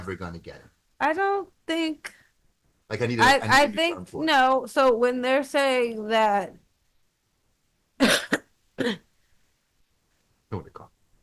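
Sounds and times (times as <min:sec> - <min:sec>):
speech: 0:00.0 - 0:02.2, 0:02.9 - 0:06.6, 0:08.8 - 0:09.1, 0:10.5 - 0:10.9
person coughing with covered mouth: 0:08.0 - 0:09.1.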